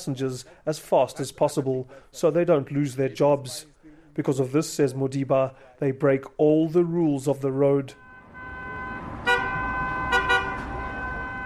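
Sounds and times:
speech: 0.0 - 8.0
steady hum of city road traffic: 0.0 - 11.4
taxi horn hooting on a city road to attract passengers: 8.0 - 11.4.

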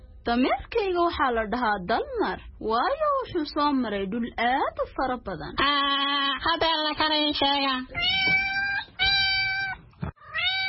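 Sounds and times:
speech: 0.2 - 8.4
pet cat meowing: 7.9 - 10.6.

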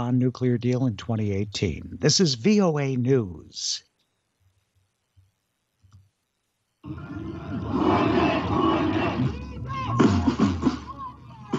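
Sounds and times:
speech: 0.0 - 3.9, 6.9 - 8.8
large protest crowd shouting outside a government building in Tbilisi: 6.8 - 11.5.

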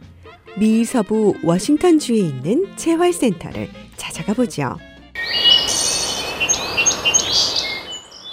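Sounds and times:
speech: 0.6 - 4.9
birds chirping at a quiet rural farm outside Seattle Washington: 5.2 - 8.3
steady outdoor hiss: 5.2 - 8.3.

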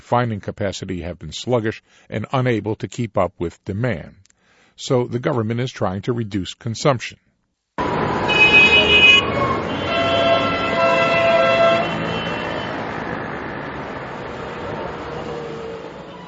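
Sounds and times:
speech: 0.1 - 4.2, 4.8 - 7.2
car horns honking in a city traffic jam: 7.8 - 13.6
traffic rumble in a major Iranian city: 7.8 - 16.2.

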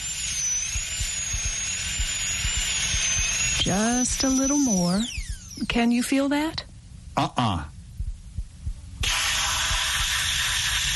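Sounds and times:
dental drill drilling out an old filling in a tooth: 0.0 - 6.0, 9.0 - 10.9
speech: 3.6 - 6.6, 7.2 - 7.7.

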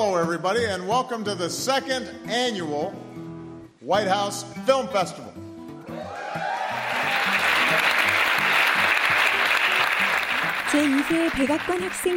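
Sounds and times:
speech: 0.1 - 3.0, 3.8 - 5.3, 10.7 - 12.1
audience cheering and whooping at a student film festival opening: 5.8 - 12.1
dense audience applause: 6.1 - 12.1.

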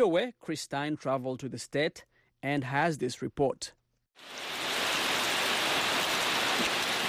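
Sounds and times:
speech: 0.0 - 4.6
dense rain falling on the ruins of a church in Nigeria: 4.2 - 7.0.

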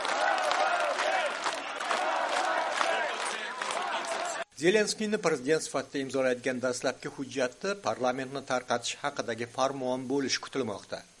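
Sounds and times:
crowd cheering in front of the parliament during a presidential inauguration: 0.0 - 4.5
speech: 4.6 - 11.1.

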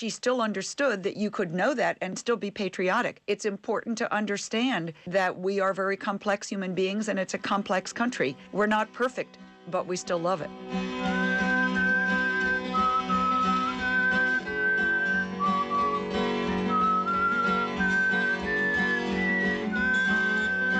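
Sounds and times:
speech: 0.0 - 11.4
steady instrumental accompaniment: 7.8 - 20.7
folk singer whistling a song introduction: 11.1 - 20.7.

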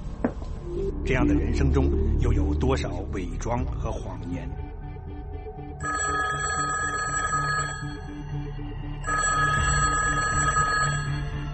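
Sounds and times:
speech: 0.2 - 4.6
telephone ringing loudly: 5.8 - 8.2, 9.1 - 11.4.

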